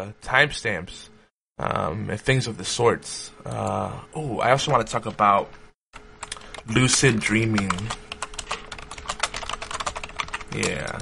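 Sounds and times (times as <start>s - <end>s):
speech: 0.0s - 6.0s, 6.7s - 8.0s, 10.5s - 11.0s
rapid computer keyboard typing with plastic key clicks: 6.0s - 11.0s.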